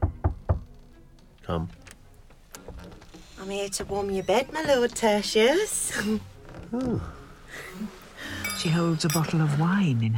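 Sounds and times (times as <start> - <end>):
knocking on a wooden door shortly before midnight: 0.0 - 0.8
speech: 1.5 - 1.8, 3.4 - 8.0, 8.6 - 10.1.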